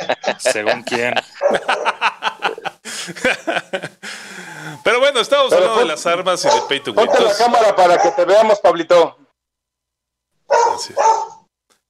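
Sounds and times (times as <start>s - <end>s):
laughter: 0.0s - 4.8s
speech: 0.1s - 2.2s, 3.0s - 3.9s, 5.2s - 9.2s, 10.8s - 11.4s
dog barking: 0.6s - 2.0s, 5.5s - 8.5s, 10.5s - 11.5s.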